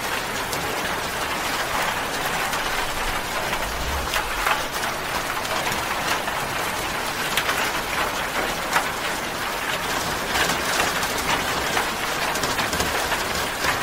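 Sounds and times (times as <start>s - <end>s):
rain falling on a metal roof: 0.0s - 13.8s
faint low rumble: 1.4s - 6.6s.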